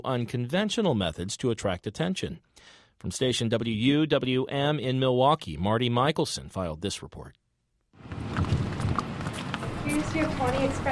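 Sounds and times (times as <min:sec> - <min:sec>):
speech: 0:00.0 - 0:07.4, 0:10.0 - 0:10.8
noise: 0:00.0 - 0:10.8
chocolate brown mare's hooves clip-clopping up to a door: 0:08.0 - 0:10.8.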